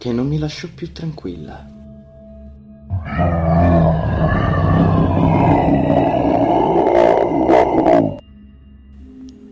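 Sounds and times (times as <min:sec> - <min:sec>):
speech: 0:00.0 - 0:01.8
anguished animal scream, possibly a lion: 0:02.9 - 0:08.2.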